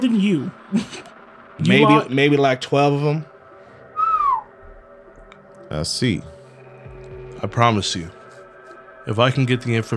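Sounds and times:
speech: 0.0 - 3.3, 5.7 - 6.3, 7.4 - 8.2, 9.0 - 9.9
faint low hum: 0.0 - 9.9
bird call or whistle: 3.9 - 4.5.

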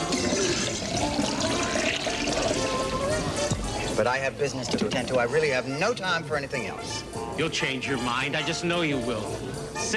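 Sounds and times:
liquid pouring from a jug: 0.0 - 5.3
speech: 4.0 - 9.9.

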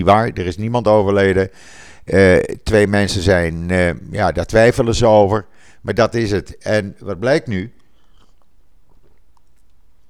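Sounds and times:
speech: 0.0 - 7.8
quiet low hum: 0.0 - 10.0
person sipping water: 7.8 - 10.0.

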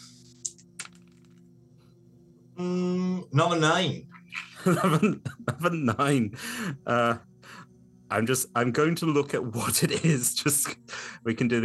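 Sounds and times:
dice clattering: 0.4 - 1.4
speech: 2.6 - 11.6
laughter: 4.5 - 6.0.

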